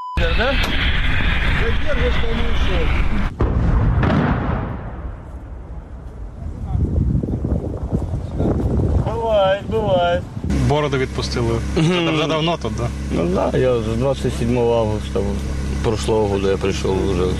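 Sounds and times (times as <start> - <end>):
wind noise: 0.2 - 10.6
speech: 1.7 - 3.4, 10.2 - 17.3
artillery gun firing a single shot: 3.3 - 5.9.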